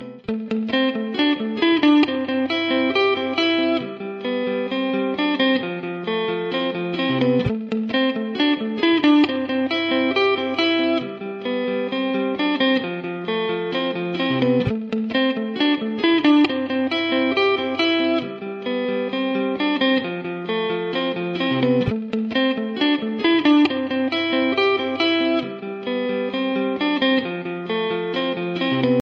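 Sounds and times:
guitar ringtone: 0:00.0 - 0:29.0.

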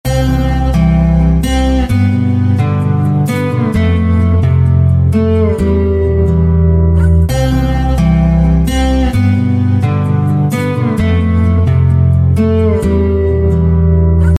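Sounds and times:
sad guitar ringtone: 0:00.1 - 0:14.3.

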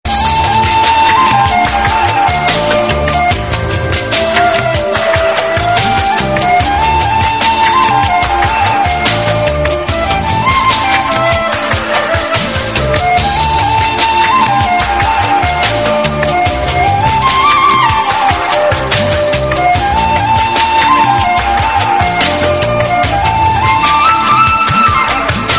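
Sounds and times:
soft background flute music ringtone: 0:00.0 - 0:25.5.

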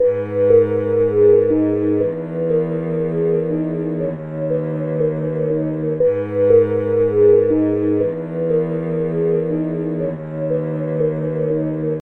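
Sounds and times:
orchestral background music ringtone: 0:00.0 - 0:11.9.

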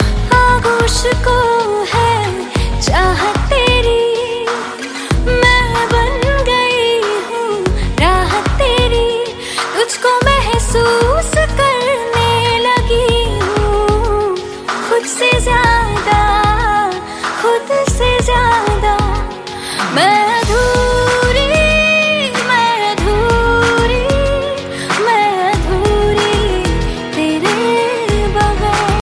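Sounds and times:
romantic female voice Hindi Bollywood ringtone: 0:00.0 - 0:29.0.

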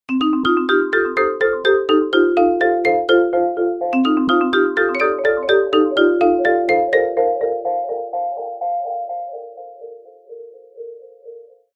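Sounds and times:
marimba ringtone with delay: 0:00.1 - 0:09.7.

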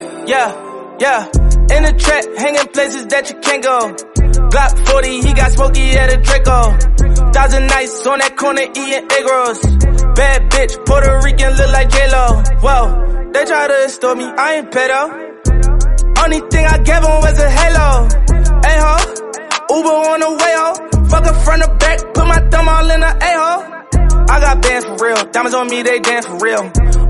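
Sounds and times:
hip hop song ringtone: 0:00.0 - 0:27.0.

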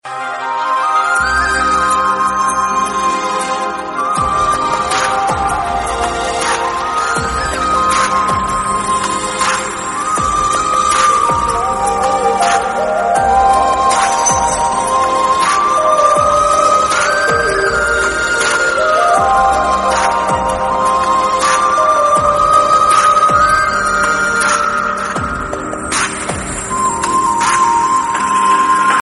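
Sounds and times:
flute background music: 0:00.0 - 0:29.0.

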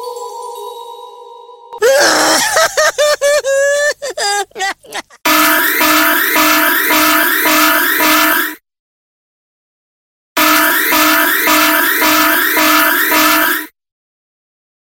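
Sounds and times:
laughter: 0:01.8 - 0:05.2
alarm tone ringtone: 0:05.3 - 0:08.6, 0:10.4 - 0:13.7.

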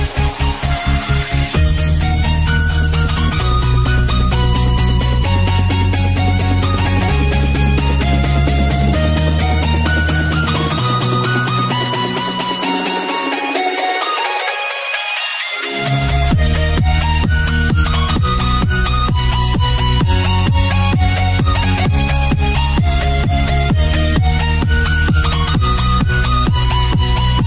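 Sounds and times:
English trap music ringtone: 0:00.0 - 0:27.4.

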